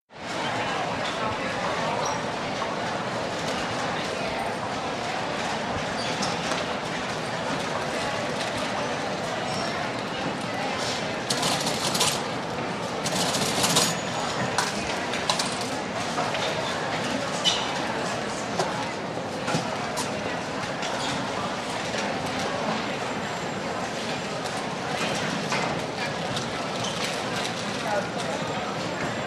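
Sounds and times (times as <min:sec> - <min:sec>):
crowd on department store ground floor: 0:00.1 - 0:29.2
cash registers in a department store: 0:11.3 - 0:12.3, 0:13.0 - 0:15.8.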